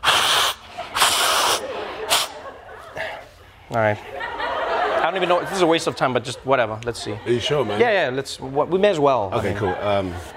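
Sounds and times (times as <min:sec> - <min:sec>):
person blowing nose: 0:00.0 - 0:02.4
laughter: 0:00.6 - 0:08.5, 0:09.3 - 0:10.3
speech: 0:03.7 - 0:04.2, 0:05.0 - 0:10.3.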